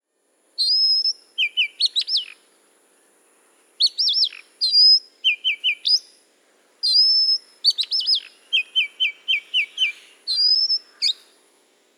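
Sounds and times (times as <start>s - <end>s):
Oriental magpie-robin song with whistled phrases and quick trills: 0.6s - 2.4s, 3.8s - 6.1s, 6.8s - 11.3s.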